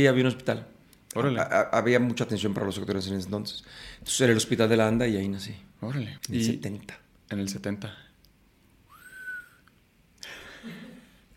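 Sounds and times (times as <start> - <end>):
speech: 0.0 - 8.1
person whistling: 8.9 - 9.7.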